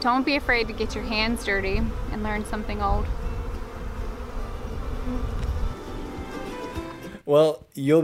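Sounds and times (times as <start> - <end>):
speech: 0.0 - 3.3, 7.3 - 8.0
honeybee swarm buzzing: 0.0 - 7.2.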